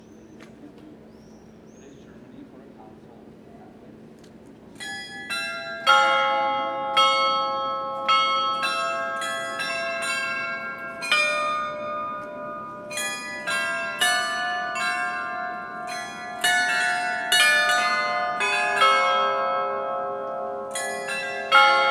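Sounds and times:
noon carillon of the Loreta church: 0:04.8 - 0:21.9.

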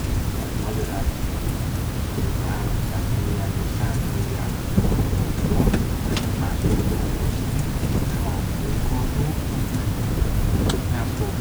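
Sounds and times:
bats flying in a cave: 0:00.0 - 0:11.3.

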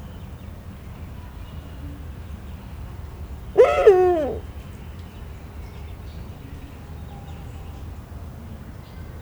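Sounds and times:
captive Eurasian eagle-owl calling at a zoo in Szeged Hungary: 0:03.6 - 0:04.4.

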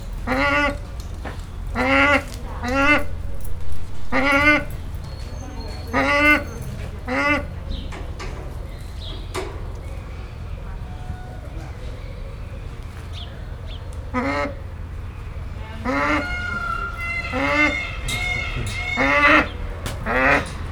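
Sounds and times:
steppe eagle calling in a zoo: 0:00.2 - 0:07.8, 0:13.9 - 0:20.6.

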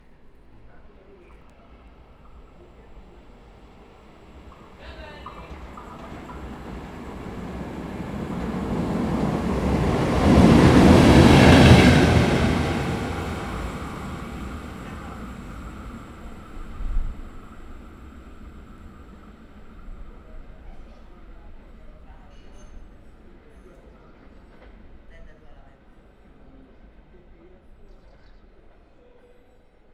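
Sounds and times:
locomotive passing: 0:02.3 - 0:20.8.

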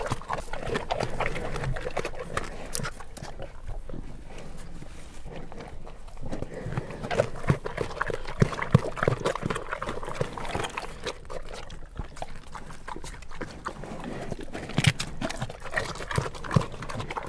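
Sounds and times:
captive brown bears chewing and smacking while eating at a zoo in Jászberény, Hungary: 0:00.0 - 0:17.2.

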